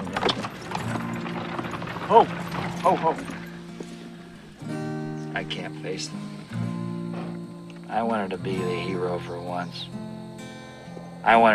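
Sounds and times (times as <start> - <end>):
horse hooves clip-clopping as a horse pulls a buggy: 0.0 - 4.7
speech: 2.1 - 3.4, 5.4 - 6.6, 7.9 - 10.0, 11.2 - 11.5.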